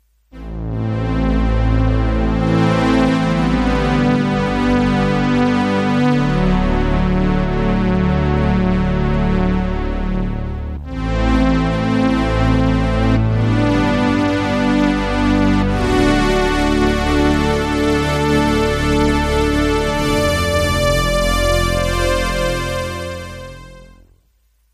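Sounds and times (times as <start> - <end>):
Korg DW 8000 synthesizer: 0.3 - 24.2.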